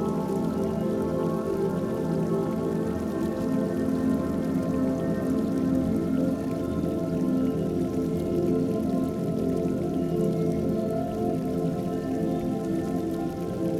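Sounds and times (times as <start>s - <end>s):
steady dense rain pattering against a window: 0.0s - 13.7s.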